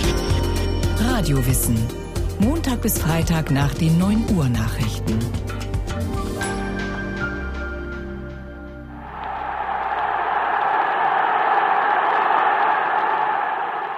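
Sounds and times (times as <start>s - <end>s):
music: 0.0s - 9.6s
speech: 1.2s - 6.2s
large crowd cheering: 9.0s - 13.9s.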